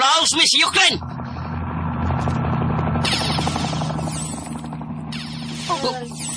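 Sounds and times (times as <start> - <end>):
helicopter rotor drone: 0.0 - 6.3
speech: 0.3 - 1.2, 5.8 - 6.2
helicopter hissy whine: 3.0 - 6.3.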